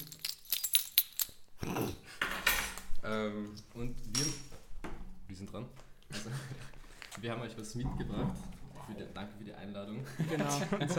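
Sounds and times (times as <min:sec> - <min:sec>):
key clinking and jangling while prying open a beer bottle: 0:00.0 - 0:01.5
speech: 0:03.1 - 0:04.3, 0:05.4 - 0:06.5, 0:07.2 - 0:10.9
laughter: 0:06.1 - 0:06.8, 0:10.0 - 0:10.9.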